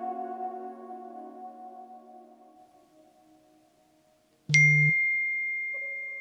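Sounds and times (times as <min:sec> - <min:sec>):
messaging app message notification ding: 0:04.5 - 0:06.1
softer second tone: 0:04.5 - 0:06.1.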